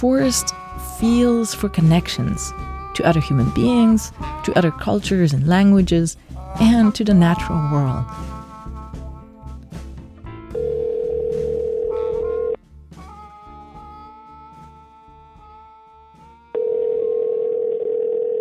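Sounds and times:
speech: 0.0s - 8.4s
soft tonal music: 0.0s - 16.8s
phone line ringback tones: 10.5s - 12.6s, 16.6s - 18.3s.

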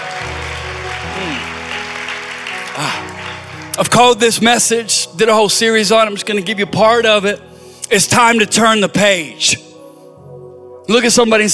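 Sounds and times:
audience clapping: 0.0s - 4.4s
speech: 3.8s - 9.7s, 10.9s - 11.5s.

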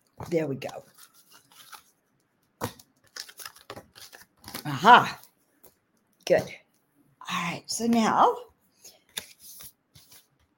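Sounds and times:
speech: 0.3s - 1.0s, 4.6s - 5.2s, 6.3s - 6.6s, 7.4s - 8.5s
deck of oracle cards being shuffled by hand: 0.3s - 2.0s, 2.6s - 4.7s, 9.0s - 10.5s.

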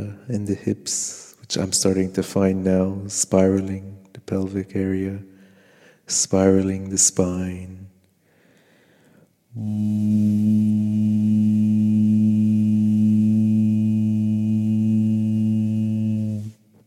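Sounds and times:
speech: 0.1s - 5.3s, 6.1s - 7.9s, 9.6s - 11.9s
low closed-mouth humming: 9.5s - 16.8s.

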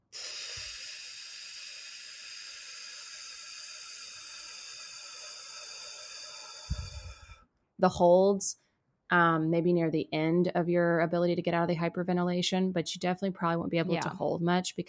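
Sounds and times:
yogic breath drawn through an open back of the throat: 0.0s - 7.4s
soft thump: 6.7s - 7.1s
speech: 7.8s - 14.8s.

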